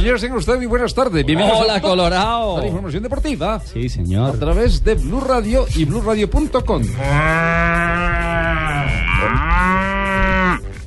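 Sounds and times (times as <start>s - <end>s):
speech: 0.0s - 10.0s
cow mooing: 6.8s - 10.7s
bull bellowing: 6.8s - 10.8s.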